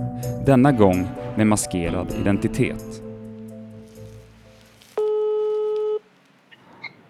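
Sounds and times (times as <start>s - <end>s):
speech: 0.0s - 3.0s
electronic telephone ringback tone on an outgoing call: 5.0s - 6.0s.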